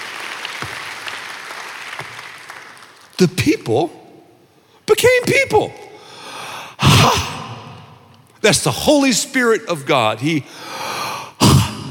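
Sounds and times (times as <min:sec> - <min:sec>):
audience applause: 0:00.0 - 0:03.2
speech: 0:03.2 - 0:04.0, 0:05.0 - 0:06.4, 0:07.0 - 0:07.3, 0:08.4 - 0:10.8.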